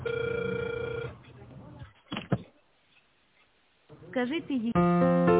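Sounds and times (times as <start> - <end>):
telephone ringback tone while a call is connecting: 0.0 - 1.2
speech: 4.2 - 5.3.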